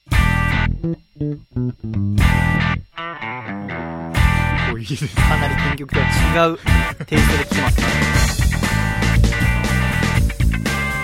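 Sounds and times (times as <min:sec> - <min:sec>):
funky electric guitar cutting strums with muted scratches: 0:00.0 - 0:11.0
speech: 0:00.8 - 0:03.8, 0:04.7 - 0:09.3
full band groove: 0:01.8 - 0:02.9, 0:03.6 - 0:11.0.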